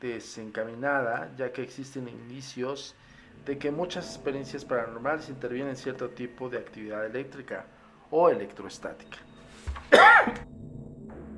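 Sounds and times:
speech: 0.0s - 9.3s, 9.9s - 10.5s
single sharp cough: 9.9s - 10.5s.

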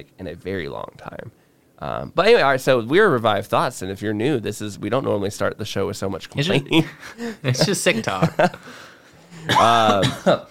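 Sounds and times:
speech: 0.0s - 10.5s
laughter: 6.4s - 10.5s
loud harsh partly voiced cough: 9.4s - 10.5s.

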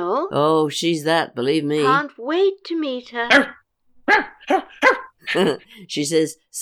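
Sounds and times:
speech: 0.2s - 6.5s
dog barking: 3.2s - 5.6s.

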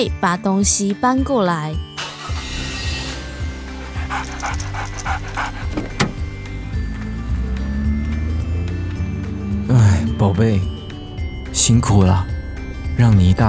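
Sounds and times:
speech: 0.0s - 1.9s, 9.7s - 10.7s, 11.6s - 12.3s, 13.0s - 13.4s
low rumble of a car engine: 2.1s - 9.5s
small dog panting inside a car: 3.8s - 6.2s
car power-window whir: 5.2s - 6.2s.

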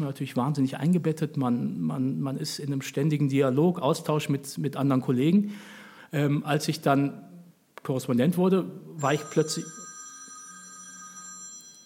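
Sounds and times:
speech: 0.0s - 9.8s
mobile phone ringing with a sustained electronic tone: 9.0s - 11.8s.

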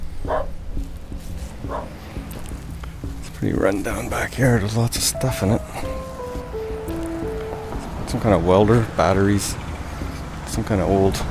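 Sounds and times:
faint rhythmic thumps: 0.0s - 11.2s
dog barking: 0.3s - 0.5s, 1.7s - 1.9s
speech: 3.4s - 6.0s, 8.1s - 9.6s, 10.6s - 11.2s.

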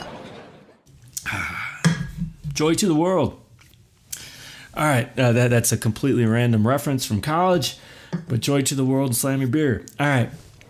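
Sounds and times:
glasses clinking in a cheers toast: 1.8s - 2.3s
speech: 2.6s - 3.4s, 4.8s - 10.5s.

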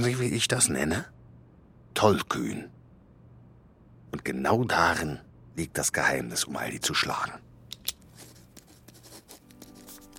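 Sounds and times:
speech: 0.0s - 1.2s, 2.0s - 2.8s, 4.1s - 7.5s
ballpoint pen scratching on a paper napkin: 8.2s - 10.1s.

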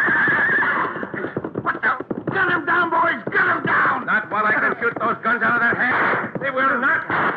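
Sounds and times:
horse neighing loudly and shrilly: 0.0s - 1.4s
rapid thud of galloping hooves: 0.0s - 7.3s.

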